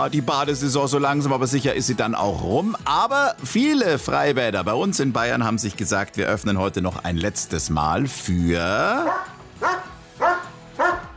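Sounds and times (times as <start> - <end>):
speech: 0.0 - 9.8
dogs barking at an outdoor swimming pool dog swim in Bavaria: 9.0 - 11.1.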